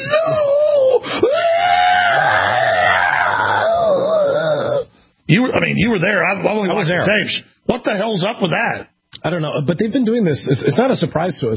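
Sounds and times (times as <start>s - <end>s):
men squealing and wailing while beaten in a fight: 0.0s - 4.9s
speech: 5.3s - 11.5s.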